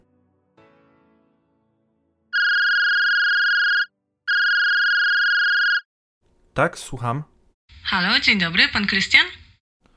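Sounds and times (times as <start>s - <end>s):
telephone ringing with electronic tones: 2.4s - 5.9s
speech: 6.6s - 7.3s, 7.9s - 9.4s.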